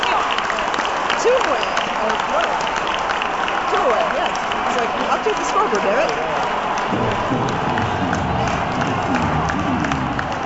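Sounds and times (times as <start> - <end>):
large baseball stadium crowd cheering: 0.0 - 10.4
people clapping: 0.0 - 10.4
speech: 5.2 - 7.8.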